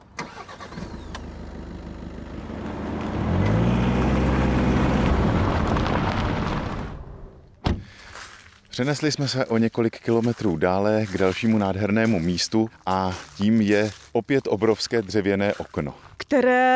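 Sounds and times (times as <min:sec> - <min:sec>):
car engine starting, revving and driving off: 0:00.0 - 0:08.1
car door thudding shut: 0:05.9 - 0:08.0
speech: 0:08.8 - 0:16.7.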